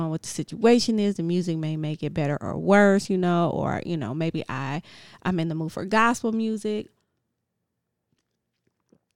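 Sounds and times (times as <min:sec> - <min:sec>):
speech: 0:00.0 - 0:07.0
person sipping water: 0:08.1 - 0:09.1
wet mouth clicks and gulps: 0:08.1 - 0:09.1.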